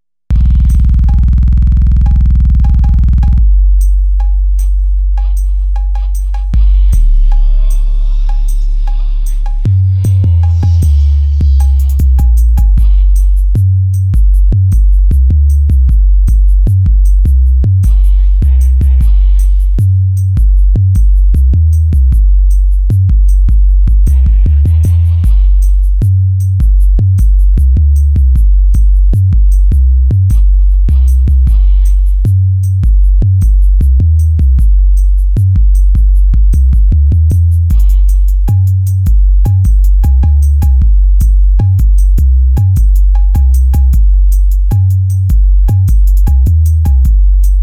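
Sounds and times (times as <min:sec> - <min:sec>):
slow mellow bass: 0:00.0 - 0:47.6.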